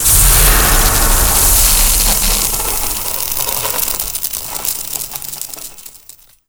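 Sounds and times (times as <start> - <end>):
cryo freeze effect: 0.0 - 4.4.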